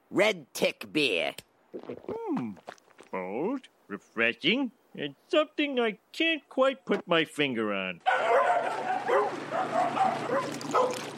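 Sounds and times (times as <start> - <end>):
speech: 0.1 - 11.1
dog barking and yipping: 8.0 - 11.1.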